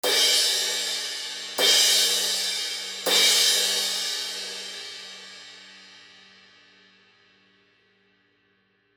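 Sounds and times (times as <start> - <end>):
19 Zildjian medium thin crash cymbal hits: 0.0 - 5.9.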